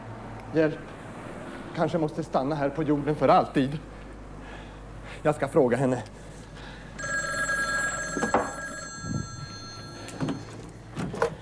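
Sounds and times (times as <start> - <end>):
speech: 0.5 - 1.0, 1.8 - 3.9, 5.2 - 6.2
telephone ringing with electronic bell tone: 7.0 - 10.9.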